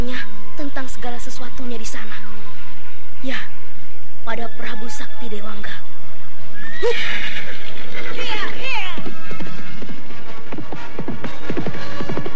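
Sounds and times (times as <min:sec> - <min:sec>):
speech: 0:01.0 - 0:03.6, 0:04.2 - 0:05.9, 0:06.8 - 0:08.3
ridden horse neighing: 0:06.6 - 0:07.7
ridden horse hooves clip-clopping: 0:07.5 - 0:12.3.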